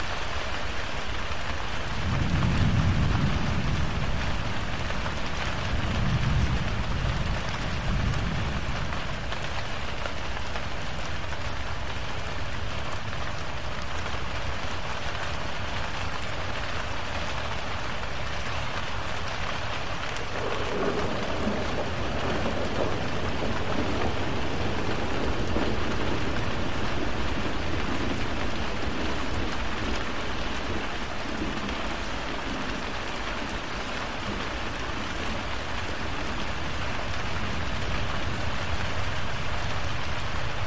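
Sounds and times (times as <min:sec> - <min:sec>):
dense rain hissing: 0:00.0 - 0:40.6
low thunder rumbling: 0:01.7 - 0:10.4, 0:18.8 - 0:40.6.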